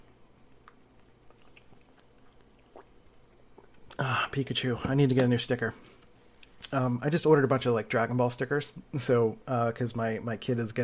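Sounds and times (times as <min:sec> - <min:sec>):
low steady hum: 0:00.0 - 0:10.8
person sipping and swallowing water: 0:00.5 - 0:04.3
speech: 0:04.0 - 0:06.0, 0:06.7 - 0:10.8.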